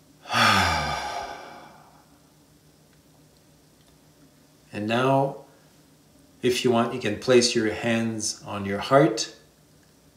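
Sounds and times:
voiced exhale sigh in a guided breathing exercise: 0:00.2 - 0:02.1
speech: 0:04.8 - 0:05.4, 0:06.4 - 0:09.4.

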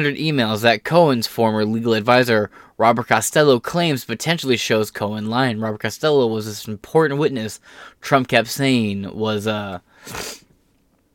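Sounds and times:
speech: 0:00.0 - 0:10.4
sneeze: 0:10.0 - 0:10.4.

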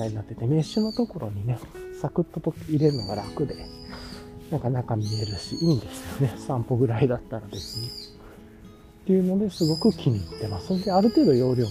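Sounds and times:
speech: 0:00.0 - 0:08.2, 0:09.0 - 0:11.7
bird calling outdoors: 0:00.5 - 0:01.3, 0:02.6 - 0:06.4, 0:07.5 - 0:08.4, 0:09.4 - 0:11.7.

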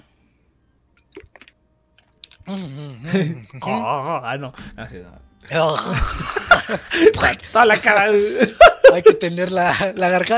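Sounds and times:
person sipping water with wet slurps: 0:01.0 - 0:02.6
speech: 0:02.5 - 0:10.3
laughter: 0:05.8 - 0:09.4.

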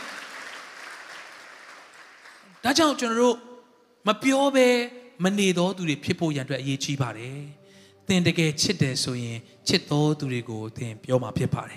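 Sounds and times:
church congregation clapping hands in praise: 0:00.0 - 0:03.2
speech: 0:02.6 - 0:11.7.

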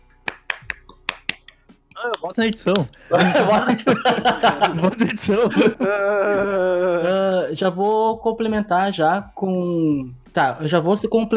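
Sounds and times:
sharp hand clapping: 0:00.0 - 0:05.8
laughter: 0:02.0 - 0:07.8
speech: 0:02.0 - 0:11.3.

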